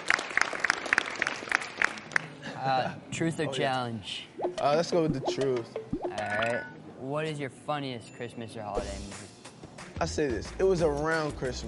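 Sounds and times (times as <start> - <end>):
group giving a round of applause: 0.0 - 2.4
speech: 2.6 - 9.3, 10.0 - 11.6.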